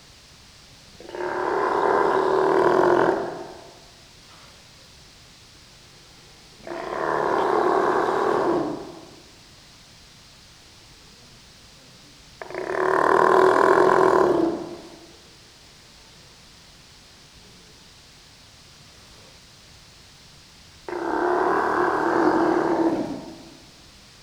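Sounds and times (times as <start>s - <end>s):
young male Steller's sea lion roaring to a human trainer: 1.0s - 3.8s, 6.6s - 9.2s, 12.4s - 15.0s, 20.9s - 23.7s.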